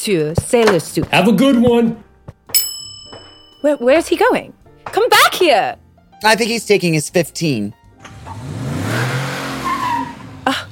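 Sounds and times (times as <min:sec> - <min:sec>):
speech: 0:00.0 - 0:02.0, 0:03.6 - 0:08.5
car revving and pulling away: 0:08.0 - 0:10.7
brief high tire squeal: 0:08.1 - 0:10.7.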